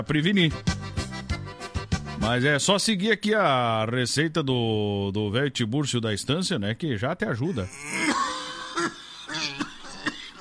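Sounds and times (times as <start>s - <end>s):
speech: 0.0s - 0.8s, 2.2s - 8.2s
voiced groaning throat sounds from person with a flu-like cold: 7.6s - 10.4s
person with a flu-like cold coughing: 7.8s - 10.4s.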